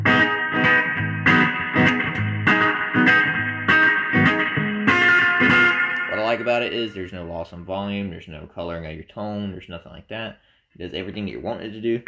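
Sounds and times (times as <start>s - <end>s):
guitar chords played through a very small tank spring reverb effect: 0.0s - 6.9s
speech: 6.5s - 12.0s.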